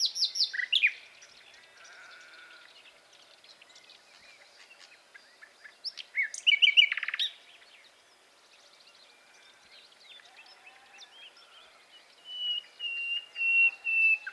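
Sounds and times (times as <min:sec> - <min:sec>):
common nightingale Luscinia megarhynchos singing: 0:00.0 - 0:01.6, 0:05.2 - 0:07.4, 0:10.1 - 0:14.3.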